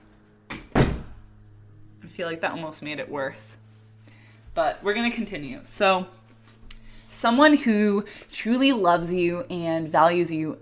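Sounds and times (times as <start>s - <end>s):
door being closed: 0.5s - 1.2s
speech: 2.1s - 3.6s, 4.6s - 6.2s, 7.1s - 10.5s.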